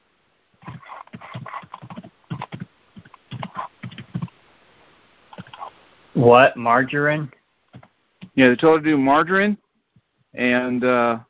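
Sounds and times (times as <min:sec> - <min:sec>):
typing on a computer keyboard: 0:00.6 - 0:04.3
speech: 0:06.2 - 0:07.4, 0:08.4 - 0:09.6, 0:10.4 - 0:11.2.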